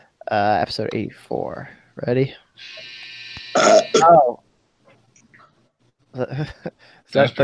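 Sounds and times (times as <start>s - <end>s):
speech: 0.3s - 3.0s, 3.6s - 4.4s, 6.1s - 7.4s
washing machine electronic buzzer tone: 2.6s - 4.2s
loud croaky burp: 3.5s - 4.3s.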